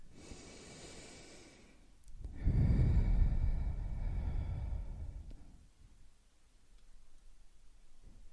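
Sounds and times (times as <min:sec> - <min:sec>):
deep breathing in and out: 0:00.0 - 0:05.7.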